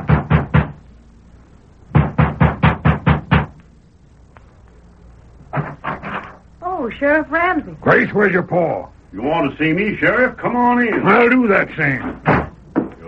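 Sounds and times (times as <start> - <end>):
firm knocking on a wooden door: 0.0 - 0.8, 1.9 - 3.6, 12.1 - 13.0
speech: 6.8 - 12.4.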